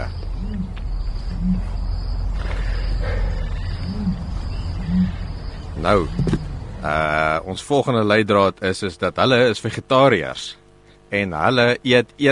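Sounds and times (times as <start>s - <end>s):
crickets and insects hissing: 0.0s - 7.6s
ostrich booming call: 4.0s - 7.0s
speech: 5.8s - 12.2s.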